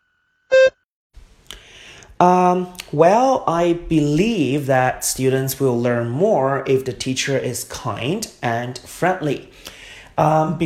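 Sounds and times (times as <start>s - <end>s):
short electronic beep signaling the start of a TOEFL speaking practice answer: 0.5s - 0.8s
speech: 2.2s - 10.6s.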